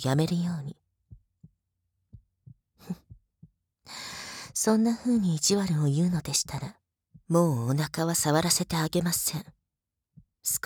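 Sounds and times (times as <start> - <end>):
speech: 0.0 - 0.8, 4.6 - 9.6, 10.4 - 10.6
woman's fast heartbeat: 1.1 - 3.6.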